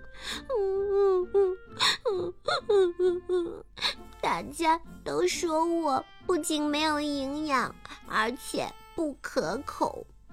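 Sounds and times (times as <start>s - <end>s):
girl wailing and sobbing in acted theatrical crying: 0.0s - 4.1s
speech: 4.3s - 10.1s.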